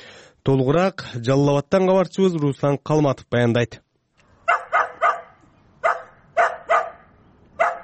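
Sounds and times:
speech: 0.4 - 3.8
Taigan hunting hounds barking during a tracking competition in Osh and Jalal-Abad regions: 4.4 - 7.8.

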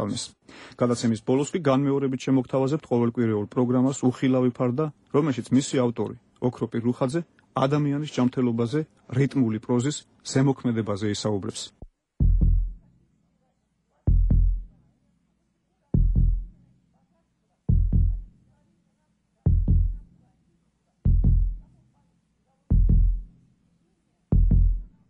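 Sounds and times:
speech: 0.0 - 11.8
human heartbeat: 12.2 - 12.9, 14.1 - 14.7, 16.0 - 16.6, 17.7 - 18.3, 19.5 - 20.1, 21.1 - 21.7, 22.7 - 23.3, 24.3 - 24.9.

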